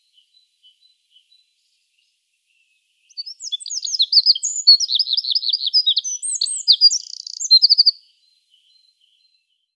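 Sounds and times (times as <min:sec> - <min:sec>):
Eurasian wren singing: 0:03.1 - 0:08.0.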